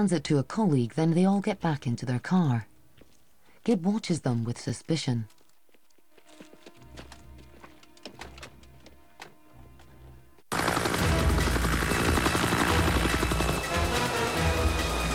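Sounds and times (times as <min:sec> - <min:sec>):
speech: 0:00.0 - 0:02.7, 0:03.6 - 0:05.4
faint thuds and clicks: 0:05.4 - 0:10.2
red and white helicopter rotor chop over woods: 0:10.5 - 0:15.1.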